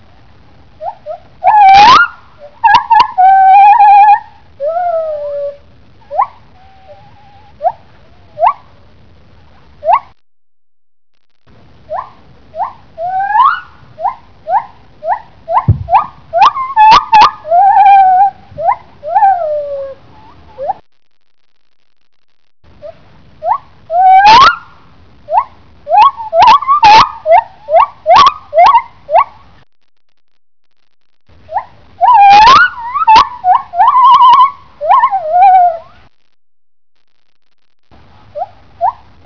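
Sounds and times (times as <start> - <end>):
male lar gibbon: 0.8 - 8.8, 11.9 - 20.8, 22.8 - 29.3, 31.4 - 36.0, 38.3 - 39.0.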